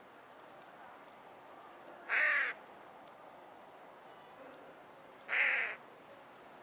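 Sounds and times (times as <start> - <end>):
Carrion crow Corvus corone calling hoarse caws: 2.1 - 2.6, 5.3 - 5.8.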